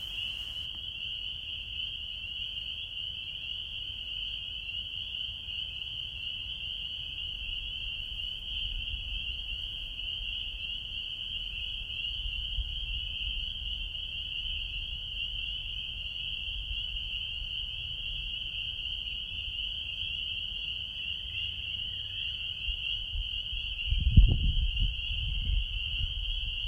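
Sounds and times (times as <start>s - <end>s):
frogs at night: 0.0s - 26.6s.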